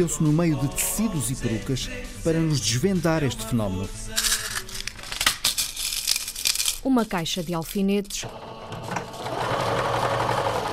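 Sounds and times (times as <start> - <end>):
speech: 0.0 - 4.3, 6.8 - 9.0
sewing machine running: 8.2 - 10.7.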